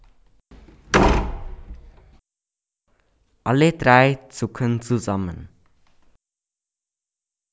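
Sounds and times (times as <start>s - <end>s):
heavy door swinging shut with a thud: 0.6s - 2.2s
speech: 3.4s - 5.5s.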